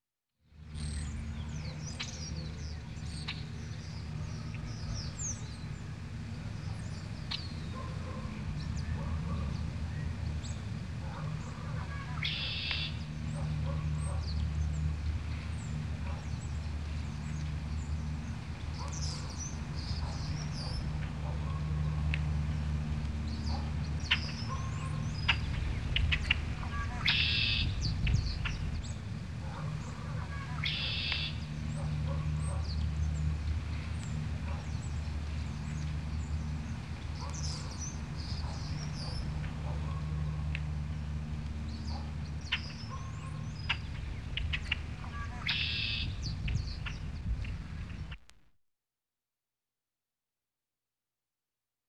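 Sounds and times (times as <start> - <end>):
birds: 0.6 - 48.2
dogs: 7.7 - 9.6, 11.0 - 12.6, 29.4 - 31.0, 31.7 - 32.7, 34.4 - 34.7, 37.2 - 40.2, 42.9 - 43.4.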